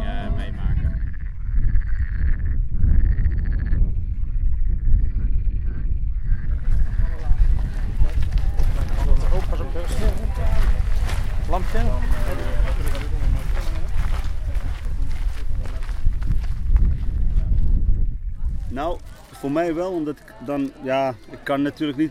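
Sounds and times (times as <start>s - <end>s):
constant wind-like rushing noise: 0.0s - 19.2s
footsteps of people walking outdoors crunching: 6.7s - 17.8s
speech: 19.5s - 22.1s.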